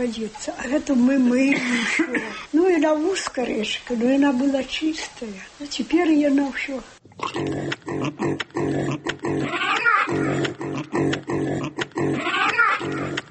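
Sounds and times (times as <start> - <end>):
speech: 0.0 - 13.2
crowd of pigs grunting and snorting at a pig-breeding complex: 7.1 - 13.2.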